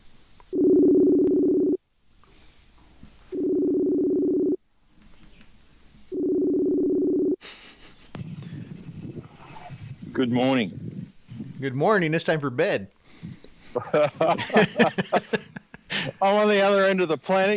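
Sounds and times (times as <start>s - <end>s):
phone line ringback tones on a call to Australia: 0.5s - 1.8s, 3.3s - 4.6s, 6.1s - 7.4s
laughter: 7.4s - 8.7s, 13.6s - 16.2s
speech: 10.2s - 10.9s, 11.6s - 13.0s, 13.8s - 17.5s.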